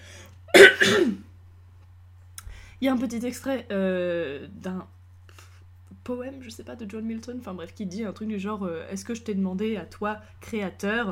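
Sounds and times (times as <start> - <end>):
faint steady low hum: 0.0 - 11.1
throat clearing with a cough: 0.5 - 1.2
speech: 2.8 - 5.0, 6.1 - 11.1.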